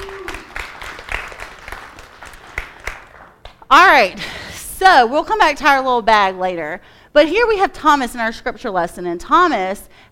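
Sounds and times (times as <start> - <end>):
audience applauding helpers: 0.0 - 3.5
speech: 3.7 - 10.1.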